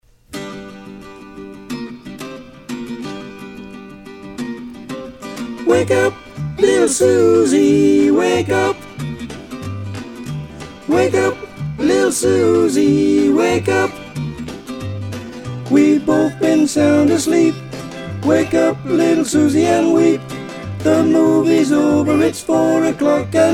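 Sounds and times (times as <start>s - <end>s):
mezzo choir singing harmonies: 5.6s - 9.0s, 10.8s - 14.2s, 15.6s - 23.5s.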